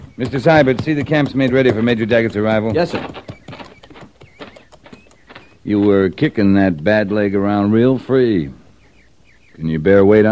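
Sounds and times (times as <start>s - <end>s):
ridden pony hooves clip-clopping: 0.0s - 7.3s
speech: 0.2s - 3.3s, 5.6s - 8.6s, 9.6s - 10.2s.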